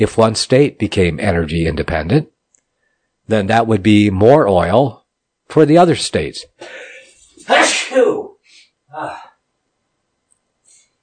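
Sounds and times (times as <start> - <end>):
speech: 0.0 - 2.3, 3.3 - 6.9, 7.5 - 8.3, 8.9 - 9.2
sneeze: 6.6 - 8.2.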